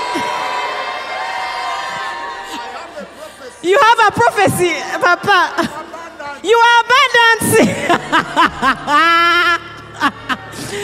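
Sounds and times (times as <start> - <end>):
large crowd shouting and cheering: 0.0 - 10.8
speech: 3.6 - 5.8, 6.4 - 10.8
laughter: 7.4 - 10.8.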